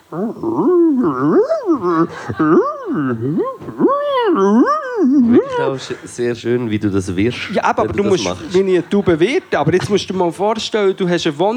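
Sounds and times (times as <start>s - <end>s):
voice imitating pigeons cooing at rest: 0.0s - 6.1s
laughter: 0.0s - 11.5s
speech: 0.1s - 11.5s.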